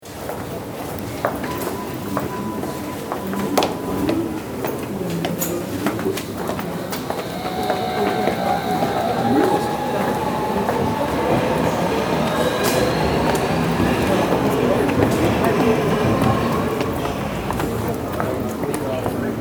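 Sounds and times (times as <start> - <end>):
U-Bahn subway ambience: 0.0 - 19.3.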